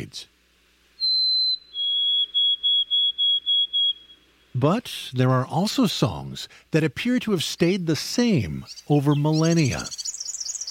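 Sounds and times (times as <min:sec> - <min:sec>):
speech: 0:00.0 - 0:00.3, 0:04.6 - 0:10.0
white-throated sparrow song: 0:01.0 - 0:04.5, 0:08.6 - 0:10.7.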